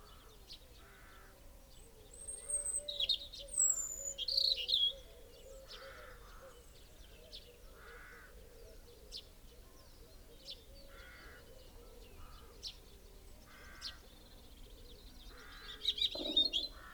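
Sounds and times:
European robin singing high thin whistles and trills: 0:02.4 - 0:05.0, 0:15.7 - 0:16.8.

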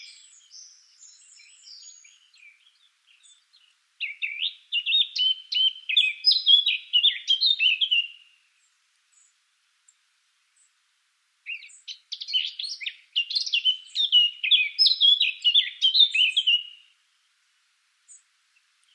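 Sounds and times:
Eurasian blackcap Sylvia atricapilla warbling song: 0:00.0 - 0:08.4, 0:11.5 - 0:16.9.

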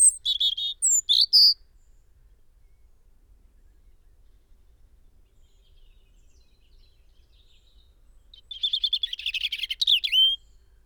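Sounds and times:
European robin Erithacus rubecula song: 0:00.0 - 0:01.6, 0:08.2 - 0:10.6.

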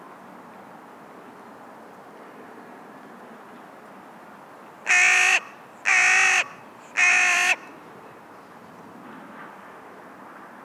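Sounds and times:
Carrion crow giving harsh hoarse caws: 0:04.9 - 0:07.7.

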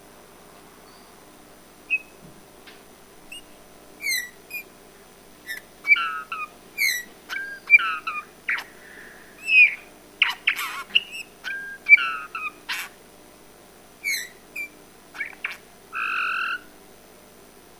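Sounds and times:
Eurasian bullfinch Pyrrhula pyrrhula mellow whistled calls: 0:01.9 - 0:02.2, 0:03.3 - 0:04.7, 0:05.5 - 0:12.9, 0:14.0 - 0:16.7.

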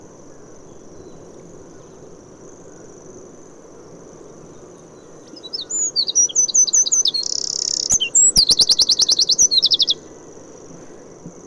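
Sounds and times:
Troglodytes troglodytes singing: 0:05.3 - 0:10.0.

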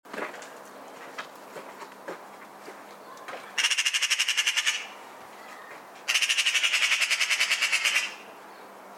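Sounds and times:
Eurasian magpie Pica pica giving harsh rattling chatter: 0:03.6 - 0:04.9, 0:06.1 - 0:08.2.

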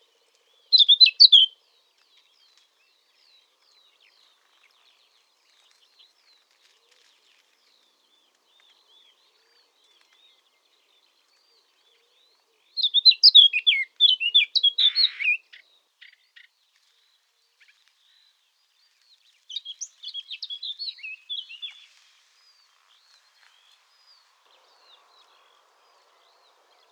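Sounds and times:
Eurasian blackcap Sylvia atricapilla warbling song: 0:00.7 - 0:01.5, 0:08.6 - 0:16.5, 0:19.5 - 0:26.9.

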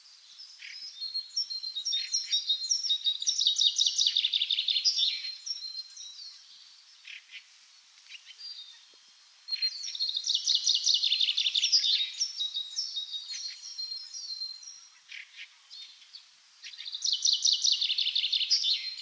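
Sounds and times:
Common chaffinch Fringilla coelebs chirping song: 0:00.0 - 0:18.9.

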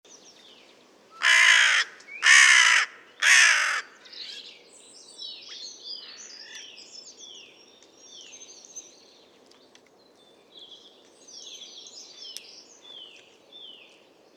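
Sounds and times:
small birds chirping and twittering: 0:00.1 - 0:01.0, 0:04.0 - 0:14.3
Carrion crow cawing harshly: 0:01.2 - 0:04.0.

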